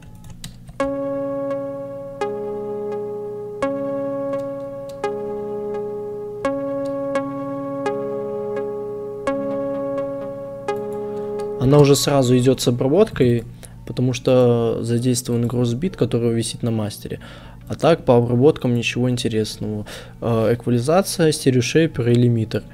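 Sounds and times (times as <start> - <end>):
synthesized bell-tower chimes: 0.8 - 12.6
speech: 11.7 - 22.7.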